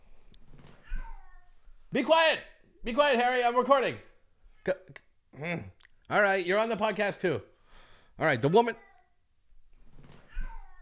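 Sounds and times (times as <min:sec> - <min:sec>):
cat meowing loudly: 0:00.8 - 0:01.6, 0:10.2 - 0:10.8
speech: 0:01.9 - 0:07.5, 0:08.2 - 0:08.9.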